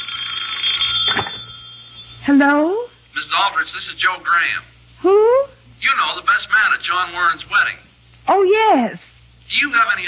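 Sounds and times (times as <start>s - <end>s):
telephone ringing with a shrill electric bell: 0.0s - 2.5s
speech: 2.3s - 10.0s.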